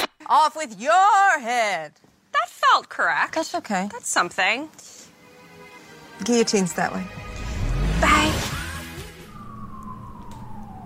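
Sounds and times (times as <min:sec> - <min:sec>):
speech: 0:00.3 - 0:05.0, 0:06.2 - 0:07.2
police or emergency vehicle siren wailing outside in New York: 0:07.1 - 0:10.8.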